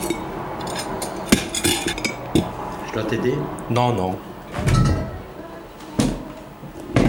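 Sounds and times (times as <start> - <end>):
dishes and cutlery being cleared from a table: 0.0 - 2.5
speech: 3.0 - 4.7.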